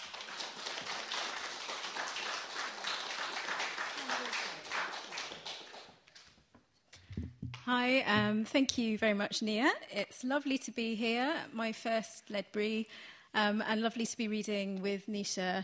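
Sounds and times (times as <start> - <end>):
audience at a poetry reading in Ledbury applauding: 0.0 - 6.0
speech: 7.7 - 15.6.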